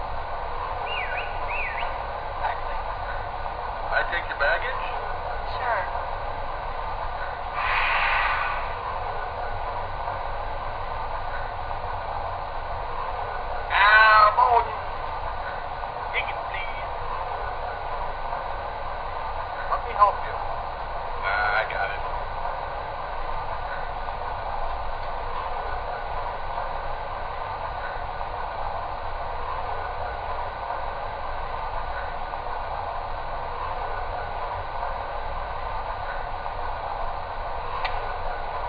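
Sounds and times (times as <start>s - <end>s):
train idling at a station with rumble and hiss: 0.0s - 38.6s.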